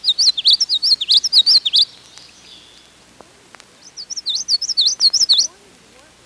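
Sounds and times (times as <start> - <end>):
common yellowthroat singing: 0.0 - 3.0, 3.8 - 5.6.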